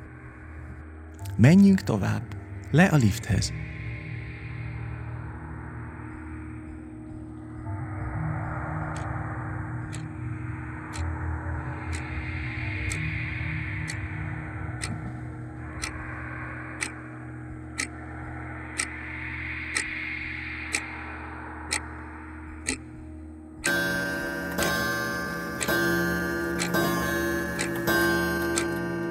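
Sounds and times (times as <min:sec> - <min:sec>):
buzzing background: 0:00.0 - 0:29.0
low hum and drone: 0:00.0 - 0:29.0
speech: 0:01.3 - 0:03.6
wall clock ticking: 0:09.9 - 0:10.1, 0:10.9 - 0:11.1, 0:11.9 - 0:12.1, 0:12.8 - 0:13.1, 0:13.8 - 0:14.1, 0:14.8 - 0:16.0, 0:16.8 - 0:17.0, 0:17.8 - 0:18.0, 0:18.8 - 0:19.0, 0:19.7 - 0:20.0, 0:22.6 - 0:22.8, 0:23.6 - 0:29.0.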